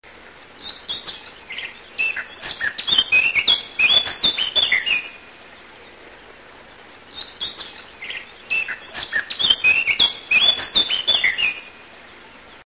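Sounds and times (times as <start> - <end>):
Eurasian blackcap songbird singing: 0.6 - 5.2, 7.1 - 11.7.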